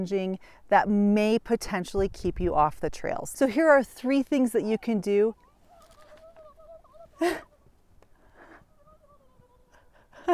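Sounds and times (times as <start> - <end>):
speech: 0.0 - 5.4, 7.2 - 7.5
wild turkeys gobbling outdoors: 5.6 - 7.7.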